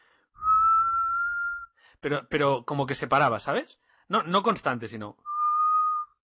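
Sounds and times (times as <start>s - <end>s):
person imitating a whistle with a steady tone: 0.4s - 1.8s, 5.3s - 6.2s
speech: 2.0s - 5.3s.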